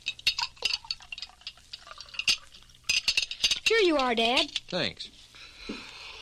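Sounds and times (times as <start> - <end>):
water poured into a glass at the supper table: 0.3 - 2.9
speech: 3.7 - 5.2.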